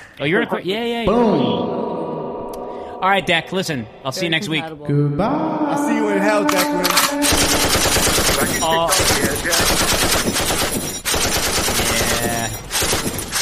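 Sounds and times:
speech: 0:00.2 - 0:01.9, 0:03.0 - 0:10.8
machine gun firing a full magazine: 0:06.9 - 0:13.4.

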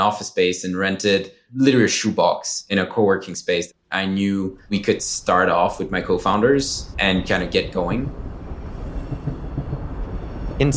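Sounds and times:
speech: 0:00.0 - 0:08.3
New York City subway train rumbling along: 0:04.6 - 0:10.7
continuous droning roar of a subway train: 0:04.6 - 0:10.7.

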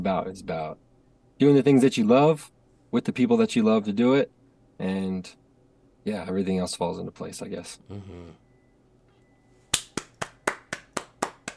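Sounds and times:
speech: 0:00.0 - 0:05.4, 0:06.0 - 0:08.4
sharp claps: 0:09.7 - 0:11.5.

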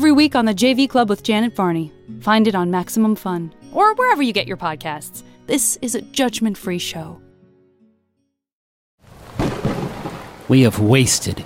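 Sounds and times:
speech: 0:00.2 - 0:07.2, 0:10.5 - 0:11.4
storm thunder rumbling: 0:09.1 - 0:11.4.

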